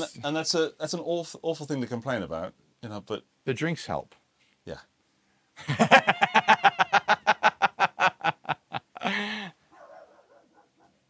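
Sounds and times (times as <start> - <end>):
speech: 0.0 - 4.9, 5.6 - 6.6
laughter: 5.6 - 9.5
dog barking with sharp yappy barks: 9.7 - 11.0.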